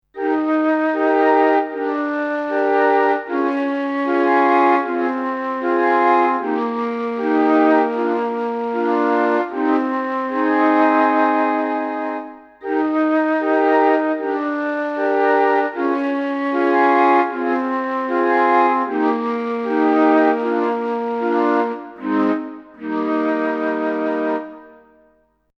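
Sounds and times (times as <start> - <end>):
bass flute tape sound on a digital instrument: 0.1 - 25.3.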